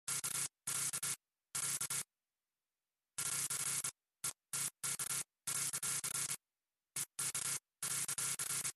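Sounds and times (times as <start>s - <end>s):
electrical short circuit: 0.1s - 2.1s, 3.2s - 6.4s, 7.0s - 8.7s.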